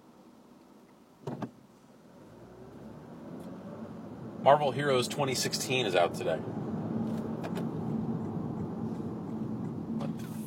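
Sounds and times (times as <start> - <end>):
truck driving along the road: 2.1 - 10.4
speech: 4.4 - 6.6.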